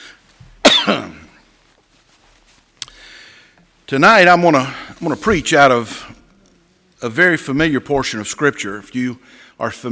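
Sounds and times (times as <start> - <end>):
person coughing: 0.6 - 1.4
speech: 0.8 - 1.2, 3.9 - 6.0, 7.0 - 9.9.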